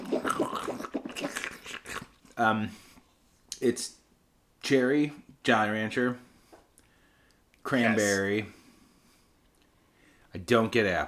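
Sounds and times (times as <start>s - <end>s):
sipping and swishing beer in mouth: 0.0s - 2.4s
speech: 2.4s - 2.9s, 3.6s - 4.0s, 4.7s - 6.3s, 7.6s - 8.6s, 10.3s - 11.0s.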